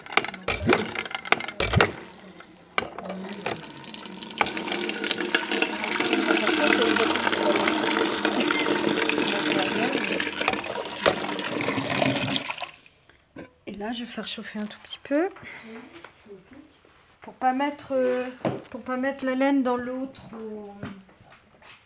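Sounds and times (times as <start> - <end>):
rainwater pouring into a container: 0.0 - 13.0
sharp knocks: 0.5 - 2.2
speech: 0.6 - 1.1, 13.9 - 16.0, 17.4 - 20.6.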